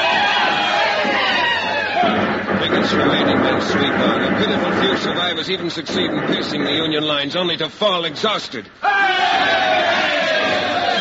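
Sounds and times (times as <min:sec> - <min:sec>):
large group of soldiers cheering and shouting: 0:00.0 - 0:02.3, 0:08.8 - 0:11.0
speech: 0:02.9 - 0:10.2.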